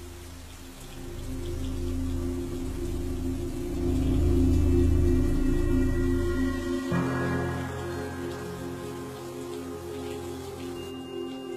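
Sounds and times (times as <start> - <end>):
steady rain pouring during a nighttime storm over a village courtyard: 0.0 - 11.5
low rumble: 1.0 - 9.5.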